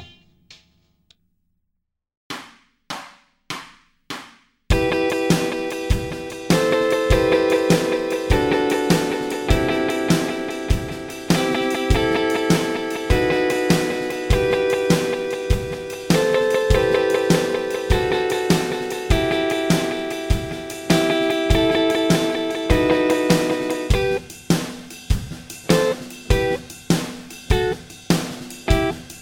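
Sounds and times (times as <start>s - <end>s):
guitar riff: 4.7s - 24.3s, 25.6s - 26.7s, 27.5s - 27.8s, 28.6s - 29.0s.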